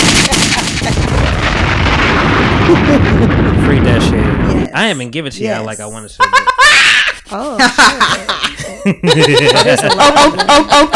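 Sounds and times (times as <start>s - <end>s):
gunshots effect: 0.0s - 4.4s
bomb explosion effect: 0.0s - 4.7s
laughter: 0.1s - 1.3s, 6.2s - 10.9s
speech: 2.7s - 10.9s.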